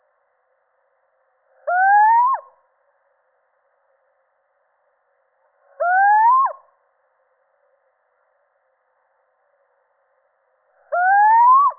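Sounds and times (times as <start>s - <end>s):
male little owl hooting: 1.6s - 2.6s, 5.8s - 6.7s, 10.9s - 11.7s.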